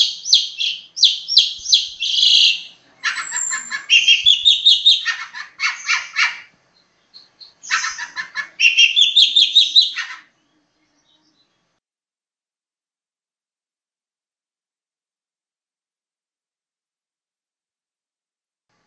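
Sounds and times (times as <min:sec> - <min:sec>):
long-tailed shrike song of rapid trills and chattering phrases: 0:00.0 - 0:11.8.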